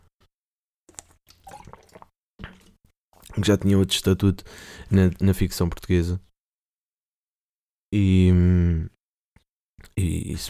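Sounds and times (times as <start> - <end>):
person sipping and swallowing water: 0.9 - 5.2
speech: 3.4 - 6.3, 7.9 - 8.9, 9.9 - 10.4.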